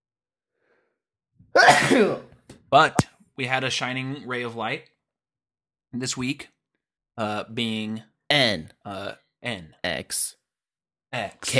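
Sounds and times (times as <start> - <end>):
speech: 1.5 - 4.9, 5.9 - 6.6, 7.2 - 10.4, 11.1 - 11.5
sneeze into the microphone: 1.6 - 2.3.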